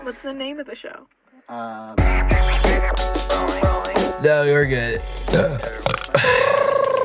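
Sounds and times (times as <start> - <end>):
speech: 0.2 - 6.6
loud drawn-out rumbling burp: 5.3 - 7.0.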